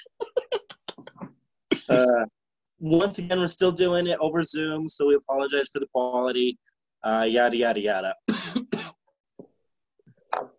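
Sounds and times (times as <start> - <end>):
man coughing into a microphone over a Zoom call: 0.0 - 0.8, 1.7 - 2.2, 8.3 - 9.0
speech: 1.9 - 8.7.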